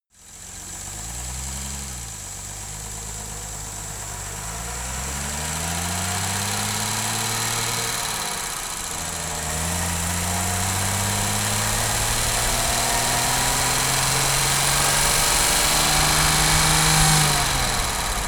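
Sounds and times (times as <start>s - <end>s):
Jaguar E-Type car engine driving: 0.2s - 18.2s.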